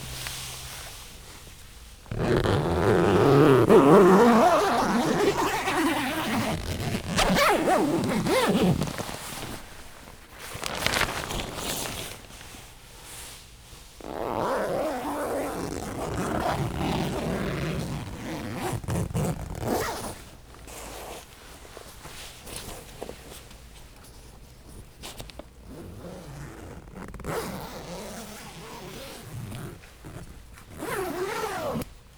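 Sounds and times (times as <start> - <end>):
zipper of double-door tent: 2.1 - 12.4, 14.0 - 21.2, 25.7 - 31.9.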